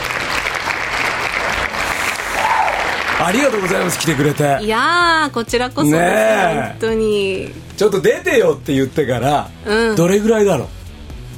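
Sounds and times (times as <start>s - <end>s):
applause from a small group in a studio welcoming a guest: 0.0s - 4.8s
speech: 3.2s - 10.8s.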